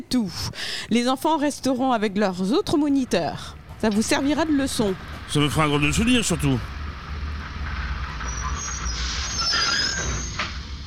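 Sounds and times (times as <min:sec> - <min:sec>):
speech: 0:00.0 - 0:06.8
train wheels squealing as train stops on open track: 0:07.6 - 0:10.8.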